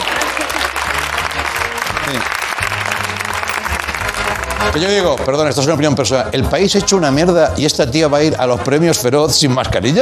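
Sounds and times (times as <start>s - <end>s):
audience applause: 0.0s - 4.2s
speech: 4.6s - 10.0s.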